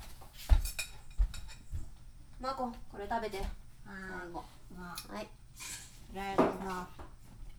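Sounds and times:
ceramic plates clinking as they are stacked and put away: 0.6 - 1.7
speech: 2.5 - 7.0.

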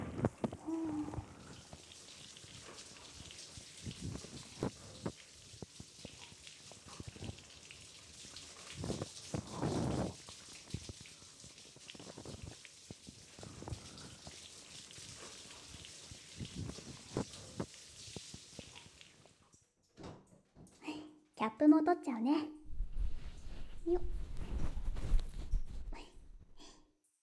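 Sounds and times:
shower water spraying onto a surface: 0.1 - 19.3
speech: 21.6 - 22.6
breathy sound: 22.7 - 26.8.

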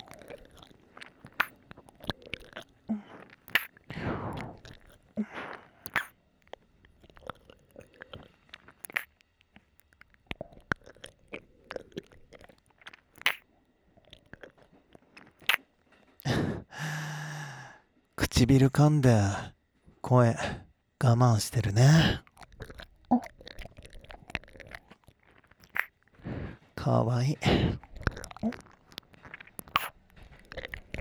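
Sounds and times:
wet mouth sounds of an ear being licked: 0.0 - 31.0
breathy sighs: 16.2 - 17.9, 20.1 - 20.7, 21.7 - 22.2, 26.2 - 28.6
speech: 18.4 - 19.5, 20.1 - 22.2, 26.9 - 28.6.

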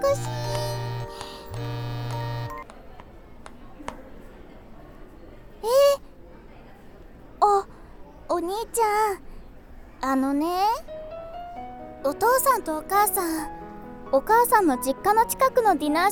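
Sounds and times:
mobile phone ringing with a bright electronic ringtone: 0.0 - 2.6
speech: 0.1 - 0.4, 8.4 - 9.3, 10.0 - 10.8, 12.0 - 16.1.

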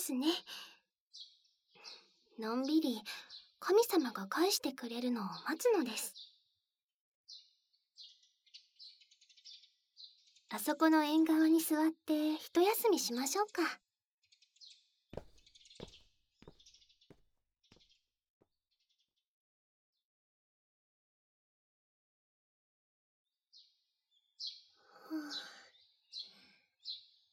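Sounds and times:
speech: 0.0 - 0.7, 2.4 - 6.2, 10.5 - 13.8
sharp taps: 15.2 - 16.6
birds chirping: 15.2 - 18.0.

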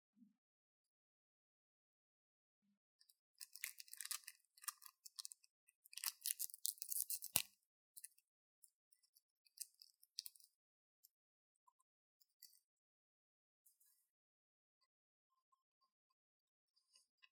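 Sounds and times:
hard candy being crunched and chewed: 3.4 - 7.5.

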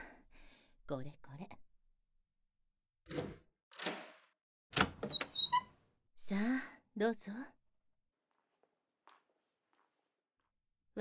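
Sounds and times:
speech: 0.9 - 1.6, 6.3 - 7.6
room door creaking open with a squeak and clunk: 3.1 - 4.2, 4.8 - 5.7
metallic lock clicks: 4.8 - 5.7.

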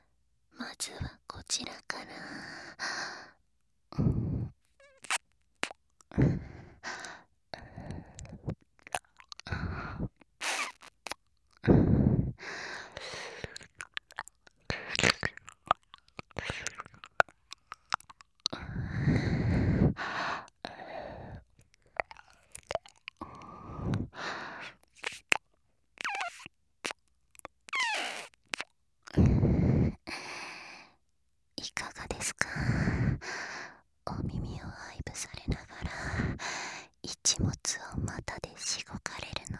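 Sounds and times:
speech: 0.8 - 3.3, 4.0 - 4.2
soft breathy sighs: 0.9 - 5.2, 6.1 - 8.6, 9.4 - 10.8, 11.6 - 13.9, 18.0 - 22.4, 23.1 - 24.8, 29.1 - 31.0, 31.9 - 39.5
wet ear licking mouth sounds: 6.8 - 11.6, 12.7 - 18.7, 21.4 - 25.4, 26.0 - 28.7.

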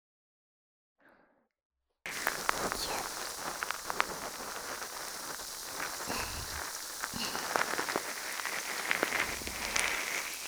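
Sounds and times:
carbonated foam fizzing and crackling while worked in the hands: 2.1 - 10.4.

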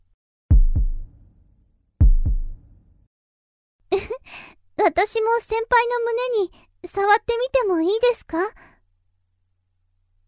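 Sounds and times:
heartbeat pounding: 0.5 - 1.2, 2.0 - 2.7
breathy gasp: 4.2 - 4.6
speech: 4.9 - 8.7.

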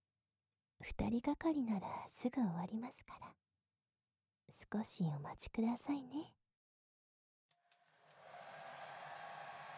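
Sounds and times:
speech: 0.8 - 3.4, 4.5 - 6.4
hair dryer blowing warm air drying a customer's hair: 7.9 - 9.7.

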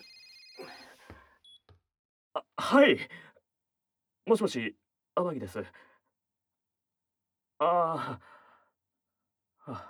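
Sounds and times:
telephone ringing with bright buzzing electronic tone: 0.0 - 1.1
short telephone beeps as call is picked up: 0.0 - 1.7
speech: 2.7 - 3.3, 4.3 - 5.9, 7.6 - 8.4, 9.7 - 9.8.

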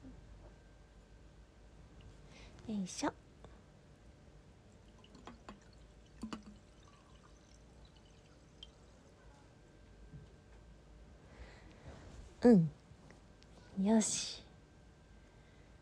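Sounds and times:
low hum: 0.0 - 15.8
speech: 2.7 - 3.2, 12.4 - 12.8, 13.8 - 14.4
sake poured into a glass for a New Year toast: 4.7 - 9.2.

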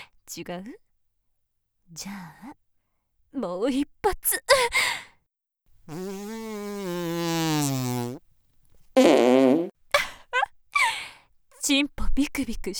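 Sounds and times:
speech: 0.3 - 0.9, 1.9 - 2.6, 3.3 - 5.0, 5.9 - 8.2, 11.7 - 12.7
fart: 5.9 - 8.2, 9.0 - 9.7.

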